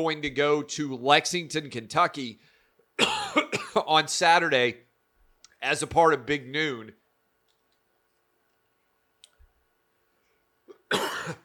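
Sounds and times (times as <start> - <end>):
speech: 0.0 - 4.9, 5.6 - 7.0
person coughing: 3.0 - 3.9, 10.7 - 11.4.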